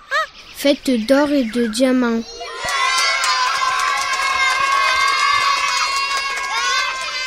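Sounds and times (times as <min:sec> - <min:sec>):
speech: 0:00.6 - 0:02.4
crowd cheering: 0:02.2 - 0:07.2
applause: 0:02.6 - 0:07.2.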